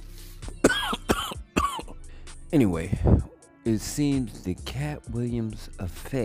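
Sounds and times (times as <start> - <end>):
person deliberately coughing: 0.6 - 2.0
speech: 2.5 - 6.2.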